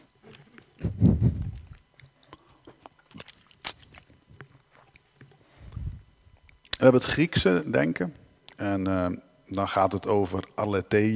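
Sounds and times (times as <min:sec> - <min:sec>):
person sipping water: 0:00.2 - 0:06.8
wet mouth clicks and smacks: 0:00.3 - 0:06.8
speech: 0:06.8 - 0:11.1.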